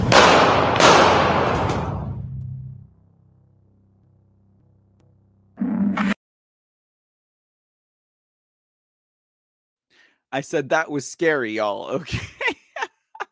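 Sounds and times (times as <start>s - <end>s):
loud gunshots with rumbling echo: 0.0s - 2.1s
low hum: 1.7s - 6.2s
speech: 10.3s - 12.4s
laughter: 12.0s - 13.3s.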